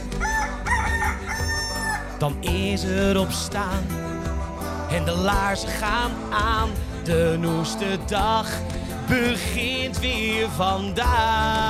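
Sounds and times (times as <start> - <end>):
rooster crowing: 0.0 - 2.2
speech: 2.2 - 4.1, 4.9 - 11.6.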